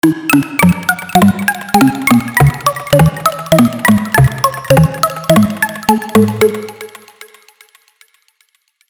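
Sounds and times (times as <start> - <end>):
mobile phone ringtone melody: 0.4 - 7.1.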